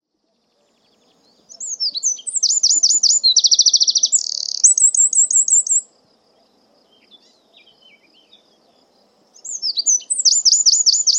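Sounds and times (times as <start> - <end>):
bird song: 0.0 - 11.1.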